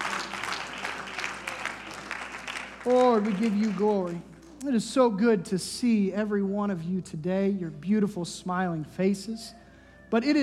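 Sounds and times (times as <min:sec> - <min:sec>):
church congregation clapping hands: 0:00.0 - 0:04.8
speech: 0:02.8 - 0:10.4.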